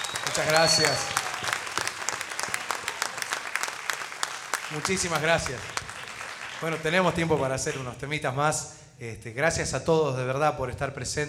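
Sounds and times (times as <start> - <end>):
audience applauding: 0.0 - 8.0
speech: 0.2 - 1.2, 4.7 - 5.8, 6.6 - 11.2.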